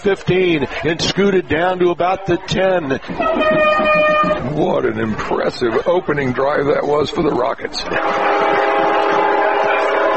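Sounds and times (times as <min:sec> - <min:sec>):
speech: 0:00.0 - 0:08.4
freight train roaring past a football field: 0:02.9 - 0:05.2, 0:07.8 - 0:10.1.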